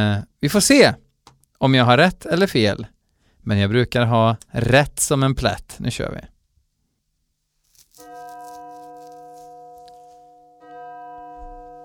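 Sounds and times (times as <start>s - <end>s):
speech: 0.0s - 1.0s, 1.6s - 6.3s
synthetic digital-sounding church bell ringing: 8.0s - 11.8s.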